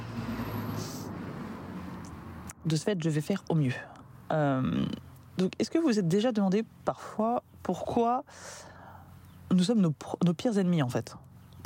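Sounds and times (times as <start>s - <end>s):
small car or van passing by outdoors: 0.0s - 2.6s
speech: 2.6s - 8.7s, 9.5s - 11.6s.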